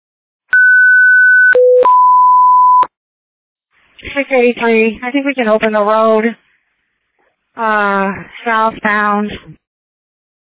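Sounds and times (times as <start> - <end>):
loud electronic alarm tones: 0.5 - 2.9
speech: 4.0 - 6.4, 7.6 - 9.6.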